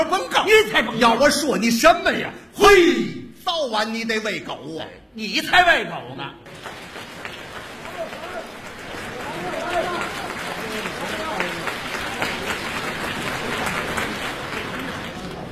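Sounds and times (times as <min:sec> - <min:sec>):
speech: 0:00.0 - 0:06.8
audience clapping at a live comic crosstalk performance: 0:06.4 - 0:15.5.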